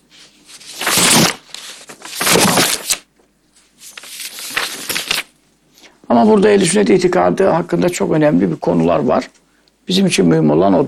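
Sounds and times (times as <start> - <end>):
filled sheets of paper being shuffled and rustled: 0.1 - 3.0, 3.6 - 5.3
speech: 6.2 - 10.8.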